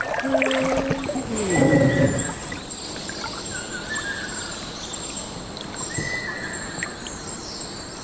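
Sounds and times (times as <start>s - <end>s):
trickling water in a mangrove forest: 0.0s - 8.0s
Ryukyu ruddy kingfisher giving a descending rolling whistled trill in a mangrove forest: 1.2s - 4.7s, 5.8s - 7.0s.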